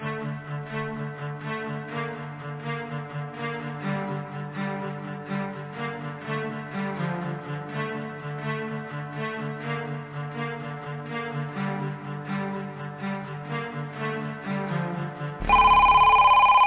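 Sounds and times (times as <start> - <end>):
telephone ringing with a buzzy electronic trill: 15.4 - 16.6.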